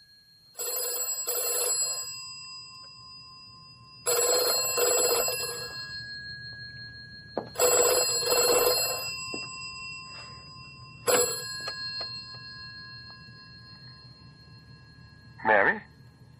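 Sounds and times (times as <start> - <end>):
telephone ringing with bright warbling electronic trills: 0.0 - 16.3.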